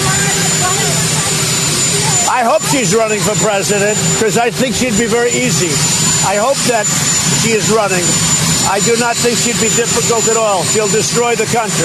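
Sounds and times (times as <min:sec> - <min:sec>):
helicopter roaring with engine drone and whine: 0:00.0 - 0:11.8
indistinct voices: 0:00.0 - 0:11.8
speech: 0:02.4 - 0:11.8.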